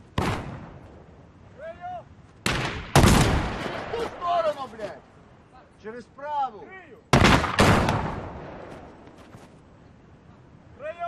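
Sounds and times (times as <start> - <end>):
gunshots during a tactical shooting drill outdoors: 0.2 - 0.8, 2.4 - 4.4, 7.1 - 8.9
speech: 5.8 - 8.2.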